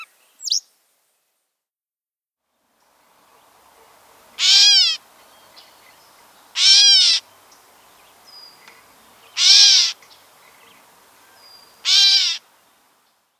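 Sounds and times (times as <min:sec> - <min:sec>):
Gray catbird harsh mewing calls: 0:03.2 - 0:13.0.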